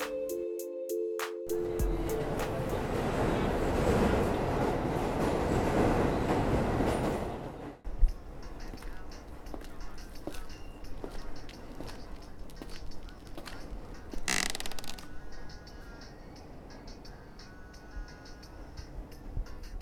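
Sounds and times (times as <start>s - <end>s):
electronic chime tones: 0.0s - 3.2s
subway train rolling along the rails: 1.5s - 14.2s, 15.1s - 19.8s.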